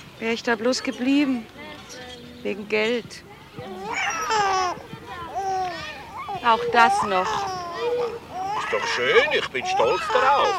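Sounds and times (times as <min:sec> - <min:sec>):
speech: 0:00.2 - 0:03.8, 0:06.4 - 0:07.5, 0:08.7 - 0:10.5
baby crying: 0:03.7 - 0:10.5.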